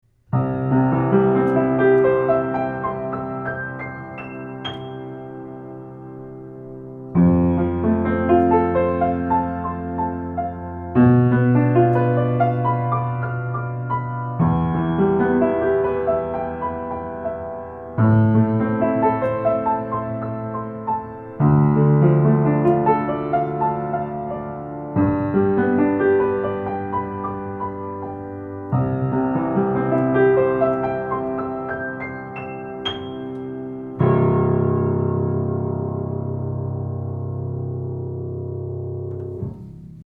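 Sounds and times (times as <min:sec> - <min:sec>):
piano: 0:00.0 - 0:40.0.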